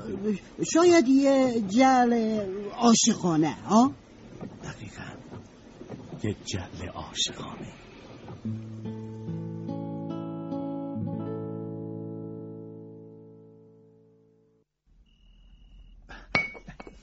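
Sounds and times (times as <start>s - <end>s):
speech: 0.2s - 4.0s, 6.2s - 7.8s
glass pickle jar filled with fuel oil clinking as it is handled: 16.4s - 17.0s.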